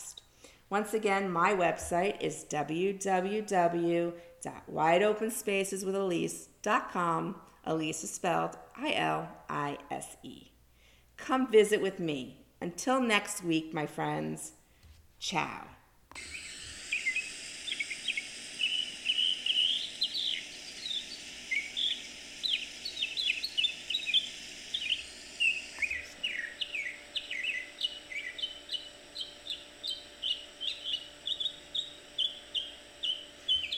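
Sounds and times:
speech: 0.7s - 10.5s, 11.2s - 14.6s, 15.2s - 16.4s
insects humming: 16.2s - 33.7s
birds singing and chirping outdoors by a lake: 16.4s - 33.7s.

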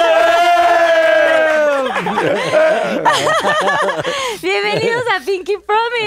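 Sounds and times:
whoops and excited shouting: 0.0s - 3.1s
small crowd cheering as guests are welcomed in West Hollywood: 0.0s - 4.0s
laughter: 1.1s - 5.3s
speech: 2.2s - 6.0s.

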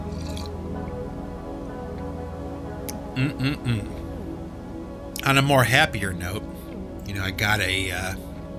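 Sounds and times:
person slurping coffee: 0.1s - 0.5s
speech: 3.2s - 4.0s, 5.2s - 6.5s, 7.1s - 8.3s.

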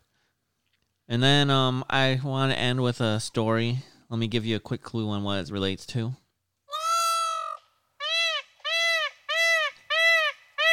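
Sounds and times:
speech: 1.1s - 6.2s
peacock calling with nasal wail and honks: 6.7s - 10.7s.

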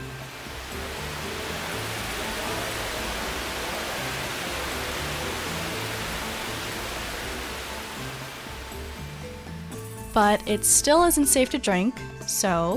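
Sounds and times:
water churning in cone-shaped softening pools at a water treatment plant: 0.0s - 9.6s
speech: 10.2s - 12.7s.

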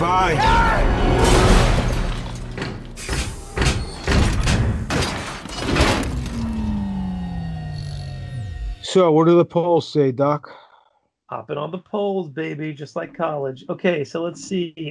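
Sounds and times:
speech: 0.0s - 0.8s, 8.9s - 10.6s, 11.3s - 14.8s
heavy metal vault door grinding and clanking shut: 1.2s - 6.5s.

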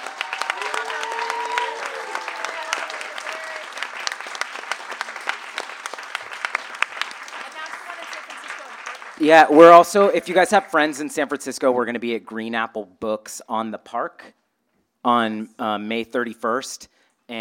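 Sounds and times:
audience applause: 0.0s - 11.1s
speech: 9.2s - 14.4s, 15.0s - 17.3s.

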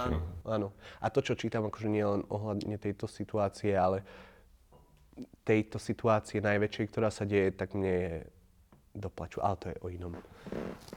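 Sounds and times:
speech: 0.0s - 4.3s, 5.2s - 8.4s, 9.0s - 10.9s
faint shuffle: 10.0s - 10.9s
chair creaking: 10.1s - 10.9s.

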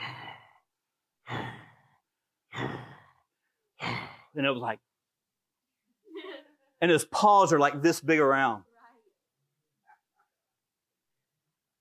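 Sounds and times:
person imitating a lioness's heavy breathy exhalations: 0.0s - 4.4s
speech: 4.4s - 4.9s, 6.8s - 8.7s.

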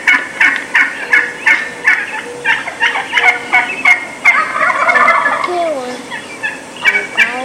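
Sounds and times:
wild turkey hens giving assembly yelps: 0.0s - 7.4s.

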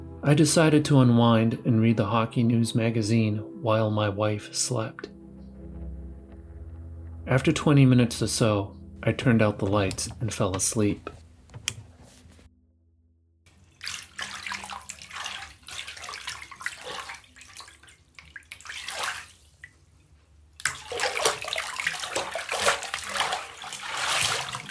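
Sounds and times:
speech: 0.2s - 5.2s, 7.3s - 11.2s
water splashing and swirling in a bathtub: 13.5s - 24.6s.

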